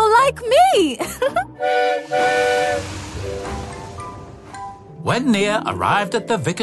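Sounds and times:
speech: 0.4s - 2.4s, 5.1s - 6.6s
loud shrill steam whistle with breathy hiss: 1.6s - 4.1s.

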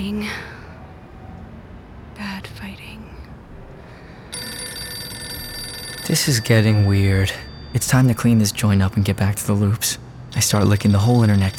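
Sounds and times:
telephone ringing: 4.3s - 9.3s, 10.4s - 11.5s
speech: 6.1s - 11.5s.

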